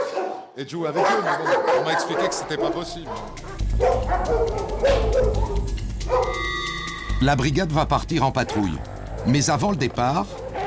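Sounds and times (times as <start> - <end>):
dog barking: 0.0 - 6.4, 8.4 - 9.4, 10.3 - 10.6
speech: 0.6 - 6.4, 7.2 - 10.6.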